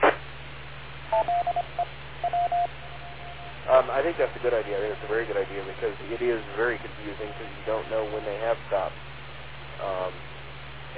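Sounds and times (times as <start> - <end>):
radio static burst: 0.0 - 0.6, 3.6 - 10.2
speech: 1.1 - 2.0, 3.7 - 9.1, 9.8 - 10.2
EchoLink radio courtesy tone beeps: 1.1 - 3.7.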